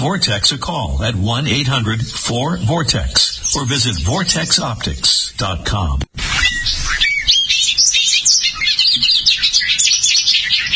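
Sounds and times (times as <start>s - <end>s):
bobolink singing: 0.0s - 5.4s, 6.3s - 10.7s
speech: 0.0s - 6.8s.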